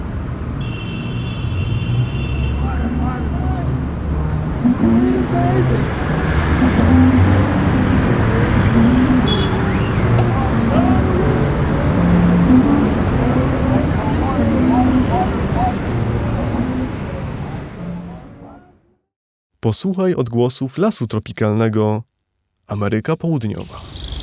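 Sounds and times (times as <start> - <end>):
big-city street traffic roar in Chicago: 0.0 - 18.9, 23.6 - 24.2
murmur of voices: 2.6 - 9.2, 9.9 - 18.7
speech: 4.8 - 6.2, 19.7 - 22.1, 22.7 - 24.1.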